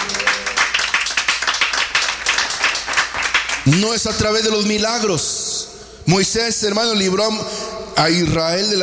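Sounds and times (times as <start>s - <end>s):
church audience clapping hands during a sermon: 0.0s - 4.1s
speech: 3.7s - 5.4s, 6.1s - 8.8s.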